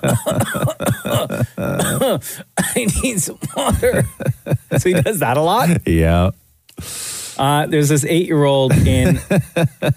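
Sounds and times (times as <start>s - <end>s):
voice imitating a child's fake cough: 0.0s - 4.3s
speech: 2.1s - 6.4s, 7.4s - 9.9s.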